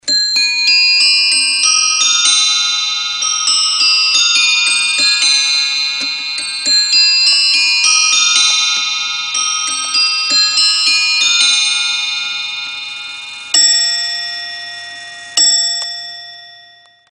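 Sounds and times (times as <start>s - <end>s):
nested bells chiming: 0.0s - 17.0s.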